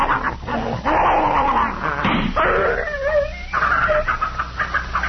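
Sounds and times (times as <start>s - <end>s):
poisoned dog yelping and whining in pain: 0.0s - 4.9s.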